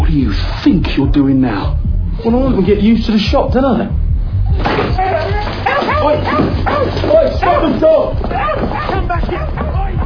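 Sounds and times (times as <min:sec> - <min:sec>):
speech: 0:00.1 - 0:04.0, 0:06.0 - 0:09.8
dog barking and yipping in a shop: 0:05.1 - 0:07.8, 0:08.3 - 0:10.0.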